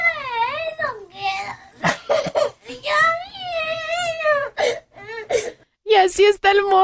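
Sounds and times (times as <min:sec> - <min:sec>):
young boy wailing and sobbing: 0:00.0 - 0:05.6
speech: 0:06.2 - 0:06.8.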